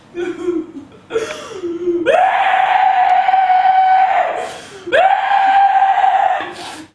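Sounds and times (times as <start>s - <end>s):
loud scream: 2.0s - 6.9s.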